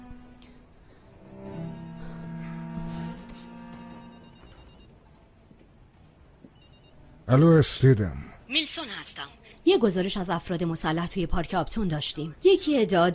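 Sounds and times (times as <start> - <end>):
telephone ringing with a steady electronic tone: 3.8 - 5.0, 6.5 - 7.2
speech: 7.3 - 13.1.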